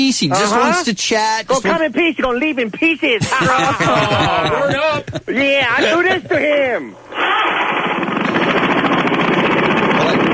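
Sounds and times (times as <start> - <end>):
speech: 0.0 - 7.8
laughter: 3.2 - 6.6
small engine running: 7.2 - 10.3.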